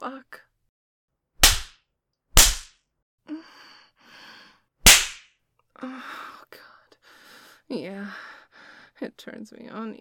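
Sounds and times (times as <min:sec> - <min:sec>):
speech: 0:00.0 - 0:00.5, 0:09.0 - 0:10.0
sharp hand slaps from a spanking: 0:01.4 - 0:01.8, 0:02.4 - 0:02.8, 0:04.9 - 0:05.3.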